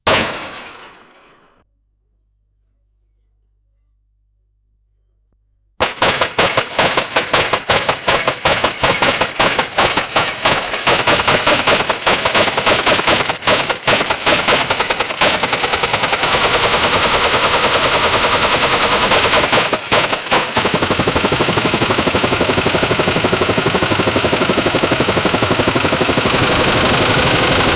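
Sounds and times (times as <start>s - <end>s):
futuristic mech stomping: 5.8s - 27.7s.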